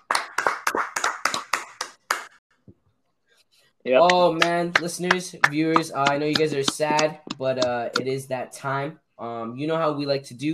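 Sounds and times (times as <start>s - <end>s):
hands clapping in a quick steady rhythm: 0.0s - 2.4s, 4.0s - 8.1s
speech: 3.8s - 10.5s.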